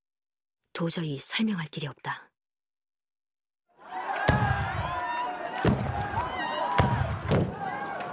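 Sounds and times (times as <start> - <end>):
speech: 0.8 - 2.3
chaotic crowd of cult members shouting and yelling at a ritual site: 3.7 - 8.1
gunshots: 5.6 - 7.6.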